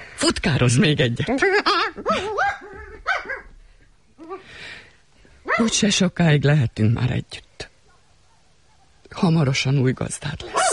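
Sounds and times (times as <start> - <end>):
speech: 0.2 - 2.9, 5.6 - 7.5, 9.1 - 10.6
dog barking: 2.1 - 3.5, 7.8 - 9.0, 10.5 - 10.7
dog yelp: 2.1 - 3.5, 10.5 - 10.7.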